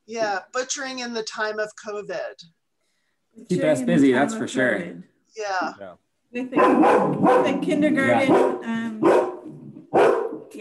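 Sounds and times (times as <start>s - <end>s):
speech: 0.1s - 2.6s, 3.4s - 9.2s
dog barking: 6.5s - 10.5s.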